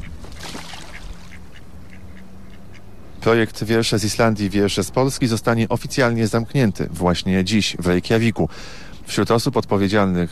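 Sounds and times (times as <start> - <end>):
Icelandic duck quacking: 0.0 - 2.9
speech: 3.2 - 10.3.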